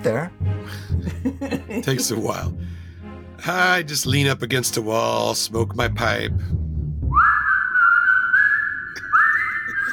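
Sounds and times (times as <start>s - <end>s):
speech: 0.0s - 2.8s, 3.4s - 6.6s
laughter: 1.0s - 2.5s, 9.5s - 9.9s
person whistling a simple tune in a tunnel: 7.1s - 9.9s.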